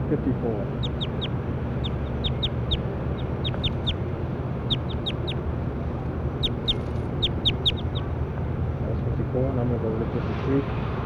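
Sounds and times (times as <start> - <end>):
steady low rumble: 0.0 - 8.6
speech: 0.1 - 1.1, 9.4 - 10.9
bird calling in high thin chirps: 0.6 - 8.0.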